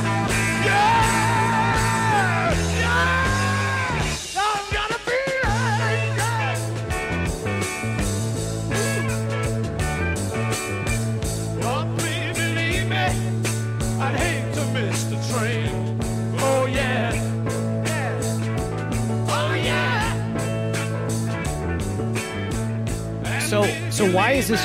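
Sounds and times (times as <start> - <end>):
loud rock song with heavy drums bass and guitar: 0.0 - 24.6
singer screaming vocals in a rock song: 0.4 - 5.1
speech: 24.2 - 24.6.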